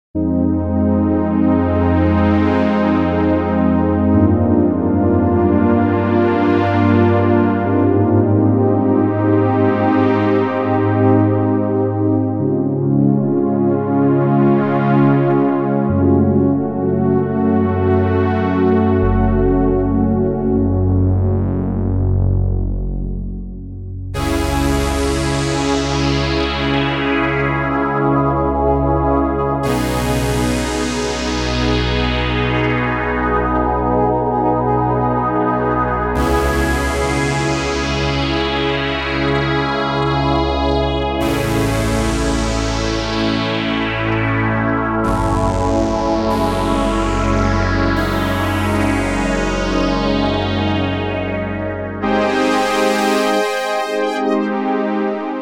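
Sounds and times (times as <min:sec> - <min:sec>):
Ensoniq SQ80 synthesizer with near-analogue sound: 0:00.0 - 0:55.4.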